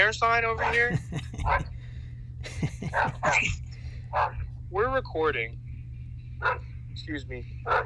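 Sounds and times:
speech: 0.0 - 1.8, 2.5 - 5.6, 6.4 - 7.8
steady low hum: 0.0 - 7.8
dog barking and yelping: 0.6 - 1.7, 2.8 - 3.5, 4.1 - 4.5, 6.4 - 6.7, 7.6 - 7.8
laughter: 0.7 - 1.8, 2.4 - 3.6.

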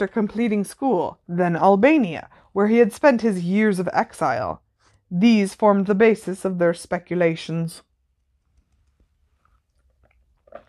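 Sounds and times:
speech: 0.0 - 7.9
wet mouth noises slurping the last of a lemonade: 8.6 - 10.6
short loud slurp of a straw pulling up the last drops of a lemonade: 9.4 - 10.6.

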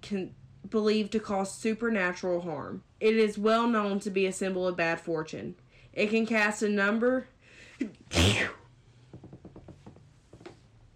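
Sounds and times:
speech: 0.0 - 8.6
person sneezing: 7.9 - 8.7.

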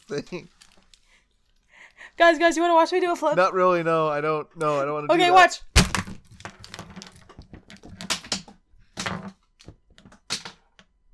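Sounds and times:
speech: 0.1 - 0.6, 2.2 - 5.7
plastic pens thrown and clattering across a hard surface: 6.3 - 10.7.

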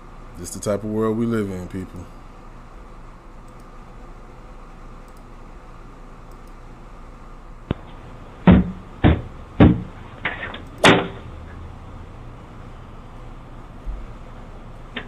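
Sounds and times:
speech: 0.4 - 2.2
heavy pounding on a door: 8.4 - 10.0.

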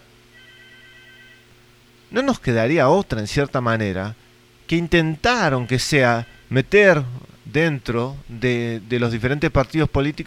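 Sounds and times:
telephone ringing with bright electronic tones: 0.3 - 1.6
speech: 2.1 - 10.2.

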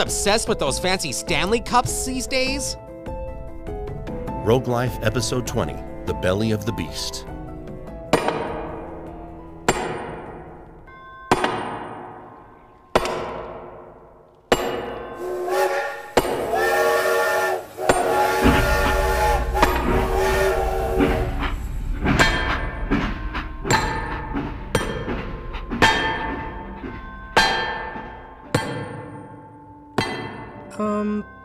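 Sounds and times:
speech: 0.0 - 2.8, 4.5 - 7.3
train passing: 0.0 - 10.9, 15.1 - 28.5
hammer striking railroad spikes: 8.1 - 16.9, 17.8 - 29.4, 30.0 - 30.6.

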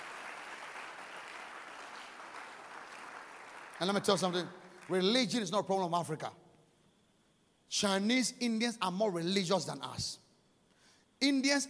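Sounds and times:
audience clapping: 0.0 - 5.3
speech: 3.8 - 6.4, 7.7 - 10.2, 11.2 - 11.6.

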